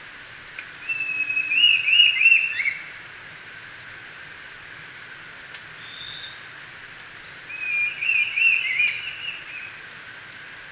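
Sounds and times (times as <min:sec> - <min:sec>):
brown-billed scythebill whistling: 0:00.8 - 0:02.8, 0:07.5 - 0:09.4.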